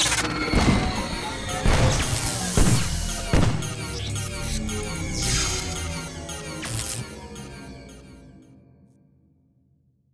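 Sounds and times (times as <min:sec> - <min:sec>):
time machine malfunctioning: 0:00.1 - 0:07.8.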